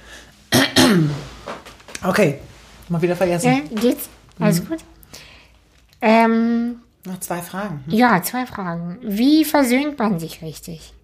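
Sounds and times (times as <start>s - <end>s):
person coughing: 0.5s - 1.3s
throat clearing: 0.5s - 1.3s
speech: 0.9s - 1.3s, 2.0s - 5.2s, 6.0s - 11.0s.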